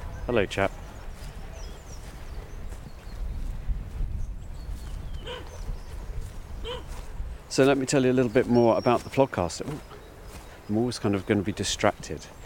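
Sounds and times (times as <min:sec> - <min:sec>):
wind-like noise: 0:00.0 - 0:07.5
speech: 0:00.3 - 0:00.8, 0:07.6 - 0:09.9, 0:10.7 - 0:12.4
dog barking in the countryside: 0:05.2 - 0:05.7, 0:06.6 - 0:07.0.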